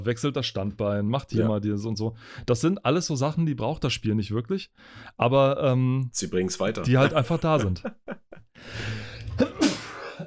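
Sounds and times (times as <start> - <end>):
speech: 0.0 - 9.6
laughter: 6.8 - 8.5
single loud sneeze with sharp inhales: 9.3 - 10.2.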